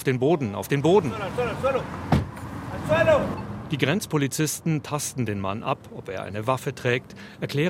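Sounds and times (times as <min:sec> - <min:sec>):
speech: 0:00.0 - 0:02.2, 0:02.8 - 0:07.6
SUV door slamming: 0:02.0 - 0:02.4.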